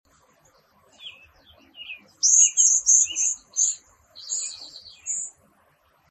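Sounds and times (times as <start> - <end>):
cedar waxwing: 0.9 - 5.3.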